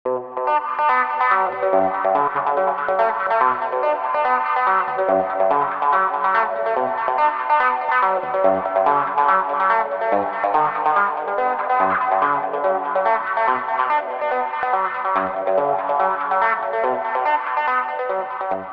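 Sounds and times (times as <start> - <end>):
wet wah guitar: 0.1 - 18.7.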